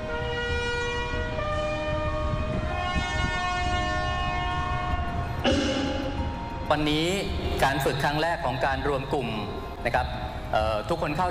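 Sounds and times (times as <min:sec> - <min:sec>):
brass horn sounding a ceremonial salute call for royal barge crews: 0:00.0 - 0:06.3
rumbling background: 0:00.0 - 0:11.2
speech: 0:06.7 - 0:11.2.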